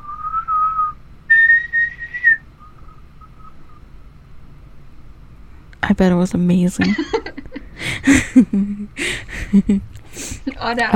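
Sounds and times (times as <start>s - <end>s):
person whistling low and high notes: 0.0s - 3.8s
speech: 5.9s - 7.2s, 7.8s - 10.9s
laughter: 6.8s - 10.0s.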